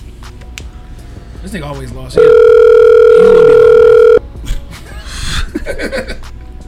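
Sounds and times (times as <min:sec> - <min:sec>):
speech: 0:01.4 - 0:03.7
electronic ringback tone from an outgoing phone call: 0:02.2 - 0:04.2
faint laughter: 0:04.4 - 0:06.3.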